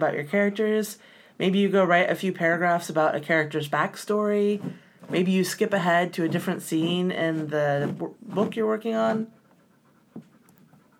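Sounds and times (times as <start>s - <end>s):
speech: 0.0s - 9.4s
dog panting quietly: 6.4s - 10.9s.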